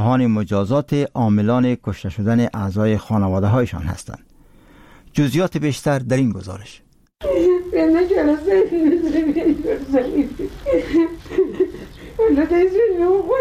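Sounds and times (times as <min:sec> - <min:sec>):
speech: 0:00.0 - 0:04.3, 0:05.2 - 0:11.6, 0:12.2 - 0:13.3
woman sobbing and wailing: 0:07.2 - 0:13.3.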